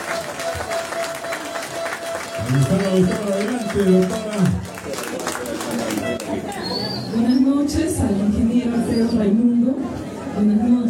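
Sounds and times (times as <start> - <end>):
audience applause: 0.0 - 6.6
faint crowd murmur: 0.0 - 10.8
speech: 2.5 - 4.7.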